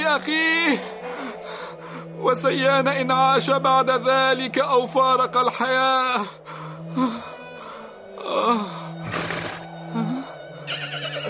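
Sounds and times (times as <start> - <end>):
steady low drone: 0.0 - 11.2
speech: 0.2 - 1.4, 2.2 - 7.3, 8.3 - 8.8
horse neighing and whinnying in the desert: 9.0 - 9.7, 10.7 - 11.2.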